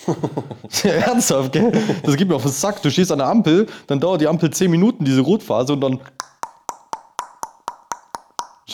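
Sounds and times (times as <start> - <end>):
laughter: 0.0 - 2.3
speech: 0.0 - 6.3
voice mimicking a car turn signal with mouth clicks: 6.1 - 8.7.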